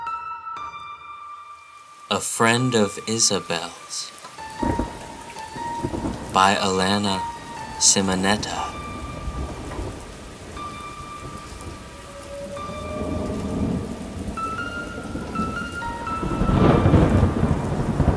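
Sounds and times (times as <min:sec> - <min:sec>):
steady rainfall: 0:01.4 - 0:18.1
speech: 0:02.1 - 0:04.8, 0:06.4 - 0:08.8
low thunder rumbling: 0:04.4 - 0:18.1.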